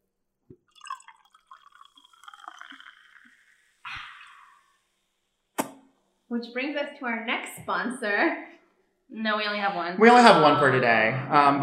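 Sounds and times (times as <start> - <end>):
brief fizzy rush: 0.7 - 5.0
liquid pouring into a glass: 0.7 - 5.0
speech: 6.3 - 8.5, 9.1 - 11.6.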